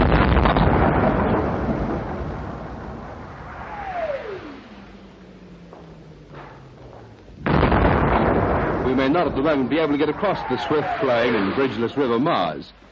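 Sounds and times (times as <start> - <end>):
wartime artillery shelling across the Maas river: 0.0 - 5.0, 5.7 - 12.1
long falling artillery shell whistle: 3.6 - 4.8
speech: 9.3 - 12.9.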